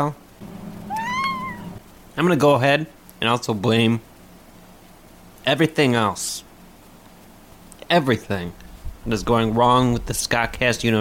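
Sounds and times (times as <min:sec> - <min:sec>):
speech: 0:00.0 - 0:00.2, 0:02.2 - 0:04.1, 0:05.4 - 0:06.5, 0:07.9 - 0:11.0
low steady hum: 0:00.0 - 0:11.0
cat meowing: 0:00.8 - 0:01.8.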